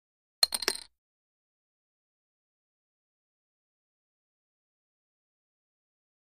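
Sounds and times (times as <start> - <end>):
casino poker chips dropping: 0.4 - 0.9.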